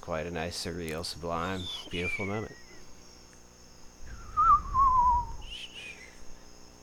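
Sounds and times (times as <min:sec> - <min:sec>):
speech: 0:00.1 - 0:02.6
person whistling: 0:04.1 - 0:06.0.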